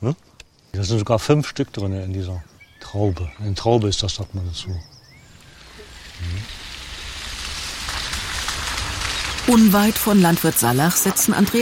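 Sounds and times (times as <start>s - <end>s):
speech: 0.0s - 4.9s, 9.5s - 11.6s
steady rain in the Aumühlental: 5.4s - 11.6s.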